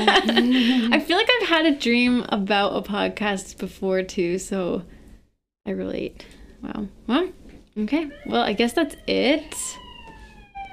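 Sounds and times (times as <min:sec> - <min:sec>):
speech: 0:00.1 - 0:05.0, 0:05.6 - 0:09.8
police siren wailing as it passes: 0:08.1 - 0:10.7.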